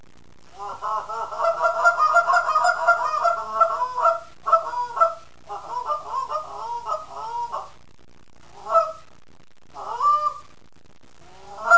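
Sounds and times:
Canada goose flock honking: 0.6 - 7.7, 8.6 - 9.0, 9.8 - 10.4, 11.5 - 11.7.

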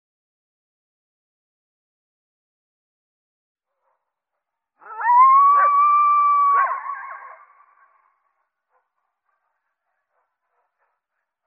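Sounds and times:
coyote giving a long steady howl: 4.8 - 7.6.

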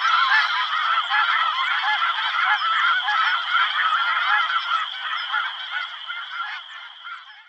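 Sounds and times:
snow goose flock honking: 0.0 - 7.4.

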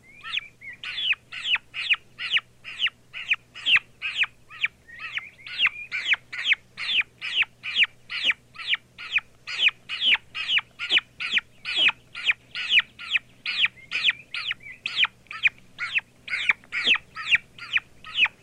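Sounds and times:
turkey chick calls: 0.0 - 18.4.

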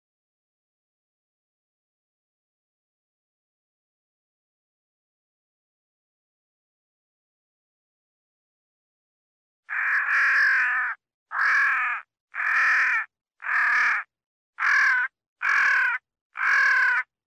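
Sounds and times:
crow cawing while fighting: 9.7 - 17.1.

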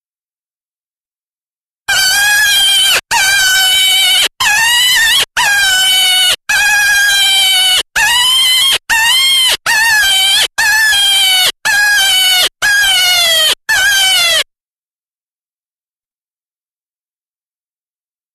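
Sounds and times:
jackrabbit distress screams: 1.9 - 14.4.

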